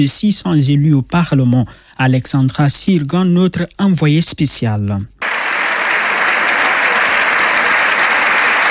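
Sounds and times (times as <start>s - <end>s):
speech: 0.0s - 5.2s
sustained applause from members of the Spanish Parliament: 5.2s - 8.6s.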